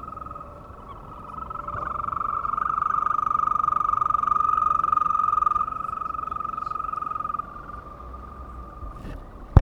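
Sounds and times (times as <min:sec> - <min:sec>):
European green toad trilling: 0:00.0 - 0:09.0.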